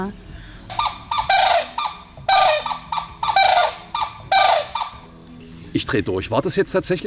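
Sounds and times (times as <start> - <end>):
speech: 0.0 - 0.3, 5.8 - 7.0
pair of birds calling at the nest while swapping incubation duty: 0.6 - 5.6.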